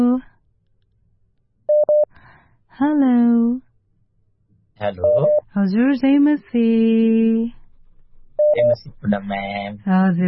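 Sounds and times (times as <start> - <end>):
WhatsApp call connecting tone beeps: 1.7 - 2.1, 5.0 - 5.4, 8.4 - 9.2
speech: 2.8 - 3.6, 4.8 - 7.6, 8.5 - 10.2
brief clipped voice: 4.8 - 5.3, 8.6 - 10.2.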